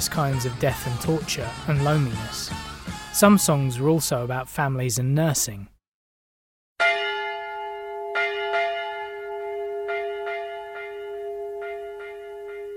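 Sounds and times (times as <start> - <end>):
speech: 0.0 - 5.8
church bells tolling: 6.8 - 12.7.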